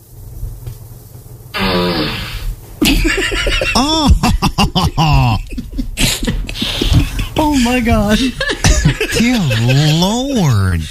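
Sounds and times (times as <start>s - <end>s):
fart sound effect played by smart speaker: 1.6s - 2.6s
laughter: 2.8s - 10.9s
speech: 7.6s - 8.6s, 9.2s - 10.9s.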